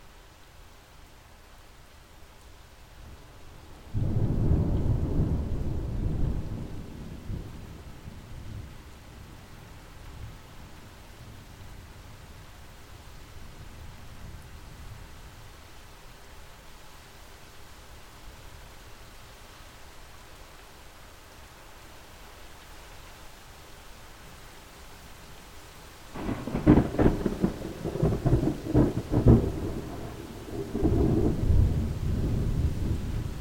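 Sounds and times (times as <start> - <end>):
thunder: 4.0 - 7.6, 26.2 - 33.3.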